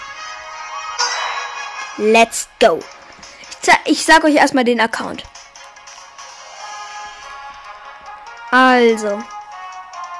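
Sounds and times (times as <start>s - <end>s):
bright electronic video game menu or loading jingle: 0.8s - 2.7s
speech: 2.0s - 3.0s, 3.6s - 5.3s, 8.5s - 9.3s.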